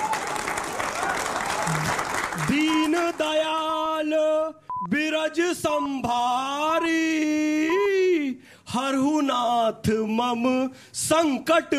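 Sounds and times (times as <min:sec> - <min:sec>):
children clapping their hands: 0:00.0 - 0:03.7
speech: 0:01.7 - 0:11.7.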